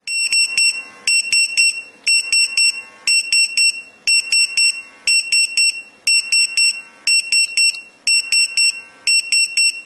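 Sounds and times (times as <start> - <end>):
fire engine beep ringtone: 0.1 - 9.8.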